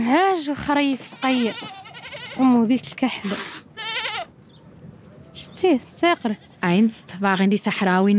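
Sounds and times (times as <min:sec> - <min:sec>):
speech: 0:00.0 - 0:03.6, 0:05.6 - 0:08.1
noise: 0:00.0 - 0:08.1
goats bleating in a scrap metal pen on a sand hill on a hot day: 0:00.8 - 0:02.8, 0:03.8 - 0:04.3.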